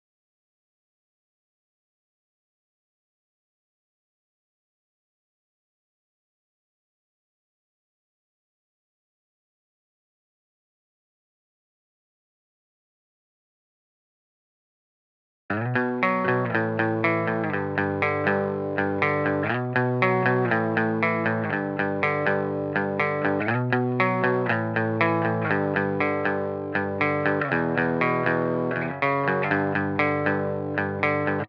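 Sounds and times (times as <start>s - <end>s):
guitar harmonies: 15.5s - 31.4s.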